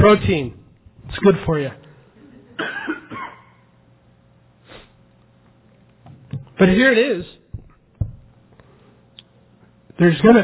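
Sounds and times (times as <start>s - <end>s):
speech: 0.0s - 1.8s, 6.6s - 7.4s, 10.0s - 10.4s
person coughing from a fly caught in the throat: 2.6s - 3.7s.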